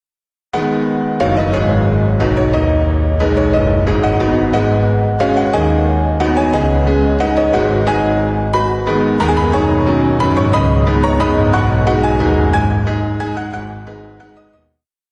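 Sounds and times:
piano music composed with music software: 0.6 - 14.7.

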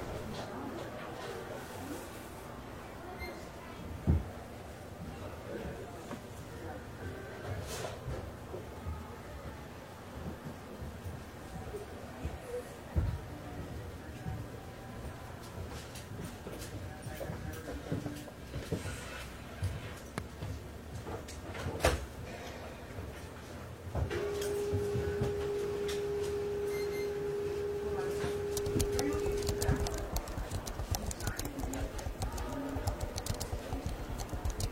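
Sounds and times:
murmur of soft voices in a library: 0.0 - 34.6
faint steady hum: 23.9 - 34.6
small movements in a library: 28.2 - 34.6.

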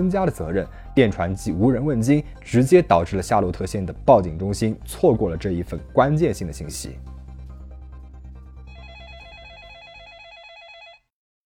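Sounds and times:
speech: 0.0 - 7.1
telephone ringing with a warbling electronic trill: 8.7 - 11.1.

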